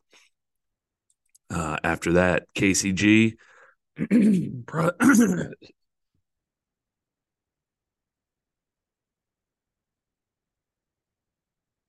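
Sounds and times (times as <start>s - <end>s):
speech: 1.5s - 5.8s
person clearing something caught in the throat: 4.0s - 5.7s.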